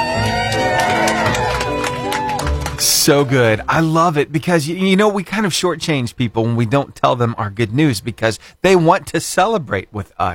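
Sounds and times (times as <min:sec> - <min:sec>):
airplane passengers cheering and whooping: 0:00.0 - 0:03.6
airplane passengers clapping: 0:00.0 - 0:03.8
speech: 0:03.1 - 0:10.3.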